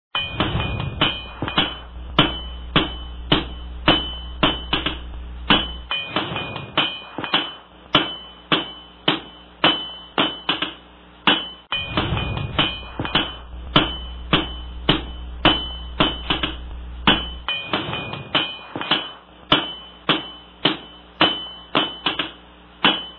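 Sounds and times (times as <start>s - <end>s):
blacksmith workshop sounds: 0.1s - 23.1s.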